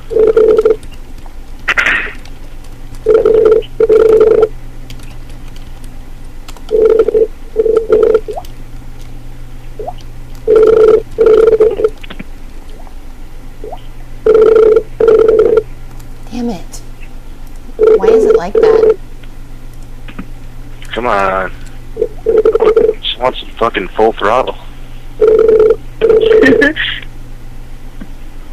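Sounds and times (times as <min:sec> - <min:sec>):
faint steady hum: 0:00.0 - 0:28.5
phone ringback tone: 0:00.1 - 0:00.8, 0:03.0 - 0:04.5, 0:06.7 - 0:08.3, 0:10.5 - 0:11.9, 0:14.2 - 0:15.6, 0:17.8 - 0:19.0, 0:22.0 - 0:23.0, 0:25.2 - 0:26.6
speech: 0:23.6 - 0:24.6.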